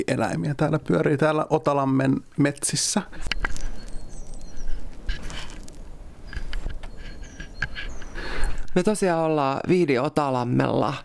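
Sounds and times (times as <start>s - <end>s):
speech: 0.0s - 3.5s, 8.7s - 11.0s
outdoor hiss: 0.0s - 11.0s
soft clicks and rustles: 2.3s - 8.8s
several birds chirping and whistling outdoors: 3.1s - 8.7s.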